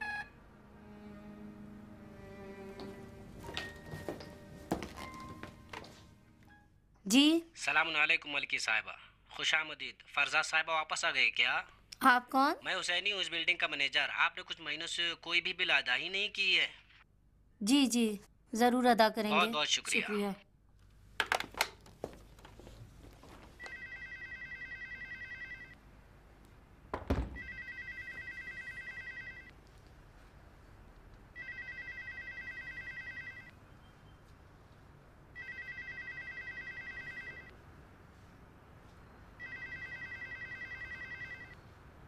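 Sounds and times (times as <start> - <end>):
telephone ringing: 0.0 - 0.4, 23.6 - 25.8, 27.4 - 29.6, 31.4 - 33.6, 35.4 - 37.6, 39.4 - 41.7
speech: 7.1 - 16.8, 17.6 - 20.4.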